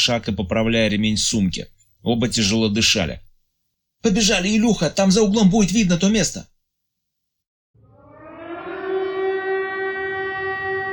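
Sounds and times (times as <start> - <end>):
speech: 0.0 - 3.3, 4.0 - 6.5
civil defense air raid sirens wailing ahead of an expected missile strike: 7.8 - 10.9.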